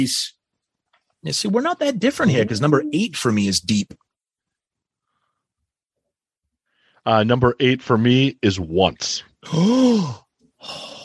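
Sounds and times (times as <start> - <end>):
speech: 0.0 - 0.4, 1.2 - 4.0, 7.0 - 11.0
loud vocal gasp: 9.4 - 11.0.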